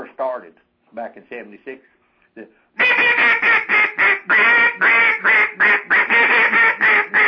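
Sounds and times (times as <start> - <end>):
speech: 0.2 - 5.9
quacks blown on an old-style duck call with maroon barrel and blue end: 2.8 - 7.2.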